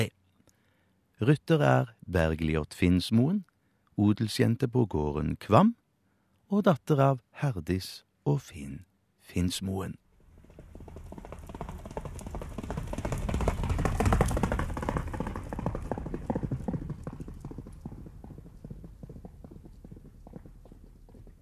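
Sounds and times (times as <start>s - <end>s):
speech: 1.2s - 5.8s, 6.5s - 10.0s
hooves of a ridden horse galloping across a farm field: 10.2s - 21.4s.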